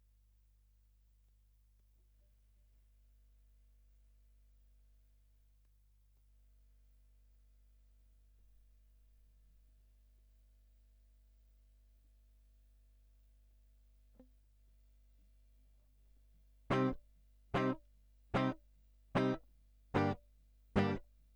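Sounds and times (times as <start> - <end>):
guitar line: 16.7 - 17.0, 17.6 - 17.8, 18.4 - 18.6, 19.2 - 19.4, 20.0 - 20.2, 20.8 - 21.0.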